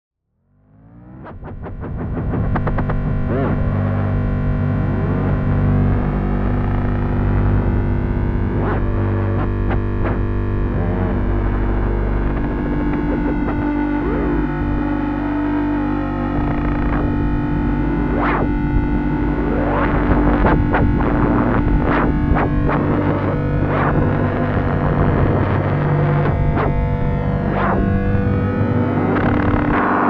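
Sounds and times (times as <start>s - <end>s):
synthesizer drone with delay: 0.7s - 30.0s.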